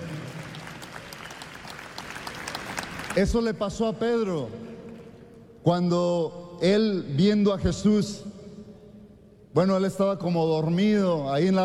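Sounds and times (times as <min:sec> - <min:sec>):
church congregation applauding during a service: 0:00.0 - 0:05.0
speech: 0:03.2 - 0:04.7, 0:05.6 - 0:08.3, 0:09.6 - 0:11.6.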